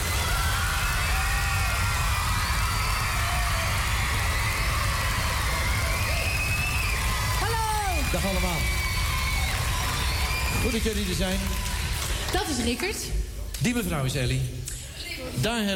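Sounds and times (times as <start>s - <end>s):
whoops and shouts: 0.0s - 10.8s
crowd clapping: 0.0s - 13.1s
speech: 10.7s - 15.7s.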